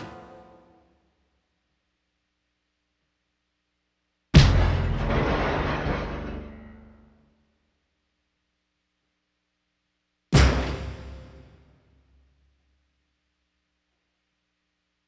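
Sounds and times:
brittle glass and percussion stinger hits: 4.4s - 7.1s, 10.3s - 11.6s.

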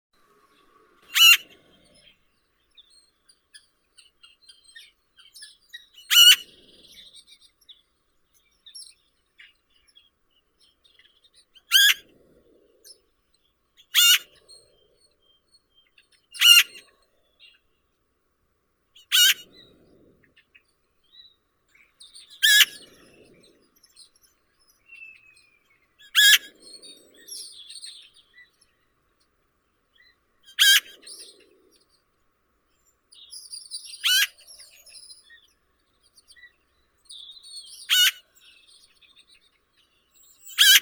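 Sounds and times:
Eurasian magpie Pica pica calling: 1.1s - 2.0s, 6.0s - 6.6s, 11.7s - 12.0s, 13.8s - 14.6s, 16.3s - 16.9s, 19.0s - 19.5s, 22.4s - 23.0s, 26.0s - 28.1s, 30.4s - 31.8s, 33.8s - 34.8s, 37.7s - 38.5s, 40.2s - 40.7s.

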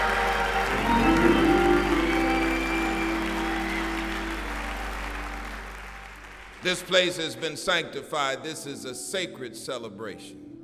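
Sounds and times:
audience whooping cheers at a gospel praise celebration: 0.0s - 5.6s
audience clapping at a gospel praise celebration: 0.0s - 7.5s
speech: 6.6s - 10.5s.

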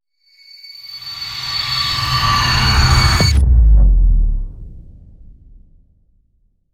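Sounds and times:
swell: 0.8s - 6.1s
hit: 1.4s - 6.1s.

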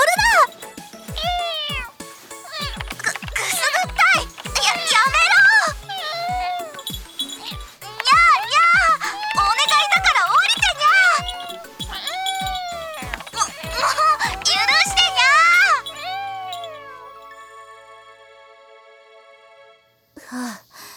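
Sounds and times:
short rustle: 0.0s - 17.2s
ringing tone: 0.4s - 17.6s
cat meowing: 1.2s - 17.2s.

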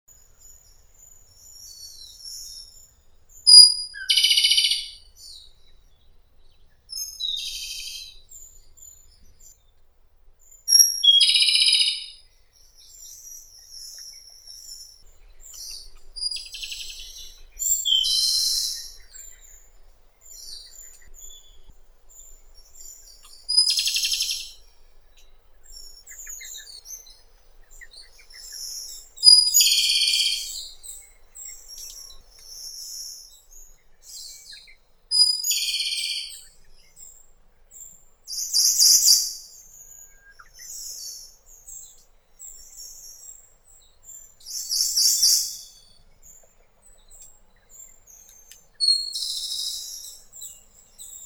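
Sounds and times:
Japanese robin Erithacus akahige: 0.1s - 51.2s.

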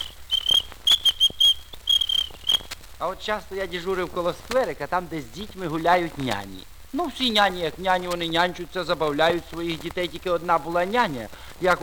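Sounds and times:
small ladies' whistle blown by a traffic officer: 0.0s - 2.8s
speech: 3.0s - 11.8s.

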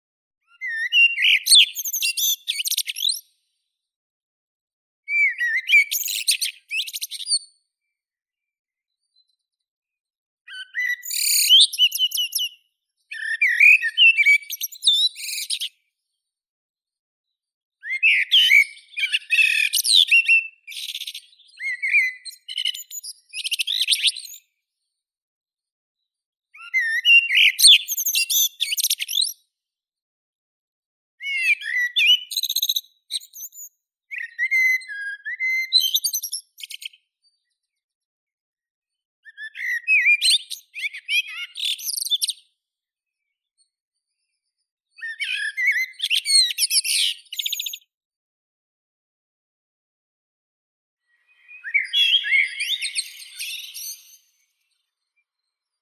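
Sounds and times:
blackbird Turdus merula: 0.4s - 3.4s, 5.1s - 7.6s, 10.5s - 15.9s, 17.8s - 24.6s, 26.6s - 29.4s, 31.2s - 37.5s, 39.3s - 42.5s, 44.9s - 47.9s, 51.0s - 54.7s.

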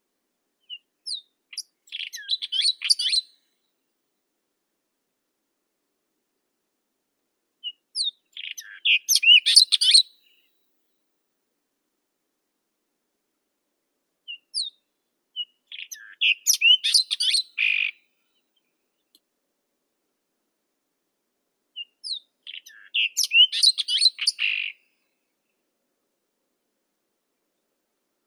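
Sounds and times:
white-throated robin Irania gutturalis: 0.6s - 3.3s, 7.6s - 10.5s, 14.2s - 17.9s, 21.7s - 24.8s.

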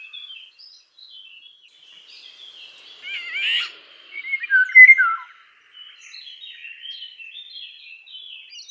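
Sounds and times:
Eurasian golden oriole Oriolus oriolus: 1.8s - 7.1s.

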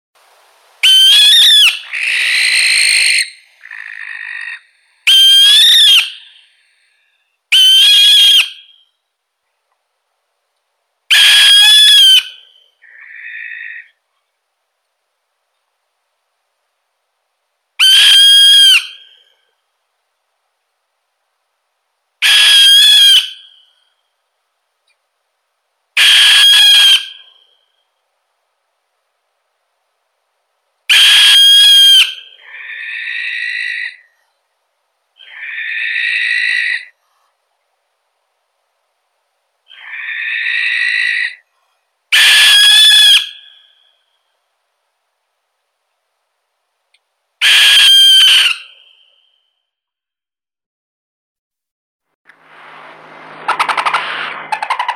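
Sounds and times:
barn owl Tyto alba call: 0.8s - 9.0s, 11.1s - 14.0s, 17.8s - 19.5s, 22.2s - 24.0s, 26.0s - 27.8s, 30.9s - 34.4s, 35.2s - 37.0s, 39.6s - 44.3s, 47.4s - 49.4s, 53.5s - 54.9s.

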